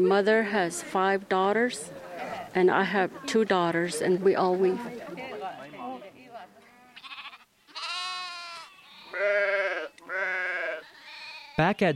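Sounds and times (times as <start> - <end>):
speech: 0.0 - 5.3, 11.6 - 11.9
sheep bleating: 6.6 - 11.6.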